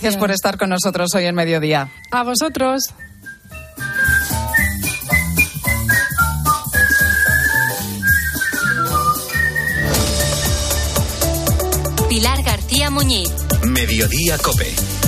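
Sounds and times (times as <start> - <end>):
speech: 0.0 - 3.1, 12.2 - 15.0
person whistling a lively clear melody: 1.8 - 11.4
steady rhythmic instrumental backing: 3.1 - 15.0.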